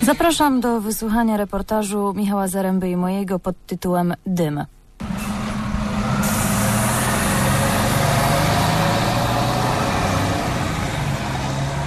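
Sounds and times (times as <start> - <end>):
speech: 0.1 - 5.1
old Jelcz city bus diesel engine idling in Toruń Poland: 5.0 - 11.8.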